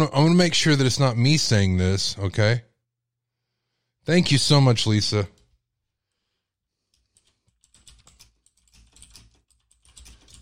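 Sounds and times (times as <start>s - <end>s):
speech: 0.0s - 2.7s, 4.0s - 5.4s
computer keyboard typing: 6.9s - 10.4s.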